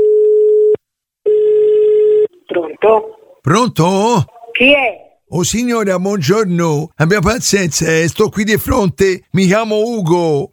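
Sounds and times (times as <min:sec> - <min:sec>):
telephone line ringing tone as a call is placed: 0:00.0 - 0:02.3
speech: 0:02.9 - 0:10.5.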